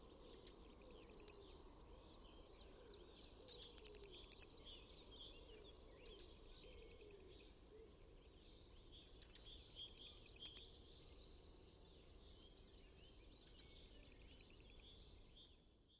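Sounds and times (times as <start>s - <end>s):
blue tit song: 0.2s - 15.9s.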